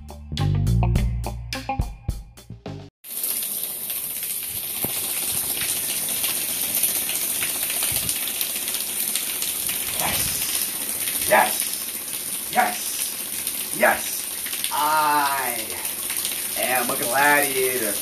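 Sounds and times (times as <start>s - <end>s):
low rhythmic thumping music: 0.0s - 2.9s
cold shower water spraying: 3.0s - 17.9s.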